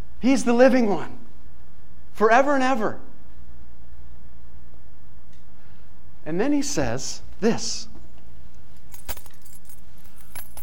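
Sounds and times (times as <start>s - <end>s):
speech: 0.2s - 1.2s, 2.2s - 3.1s, 6.3s - 7.9s
bunch of keys jangling: 8.5s - 10.6s.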